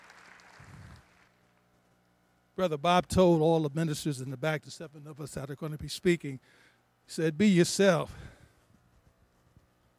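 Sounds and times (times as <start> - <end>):
audience applause: 0.0 - 1.3
speech: 2.6 - 8.4.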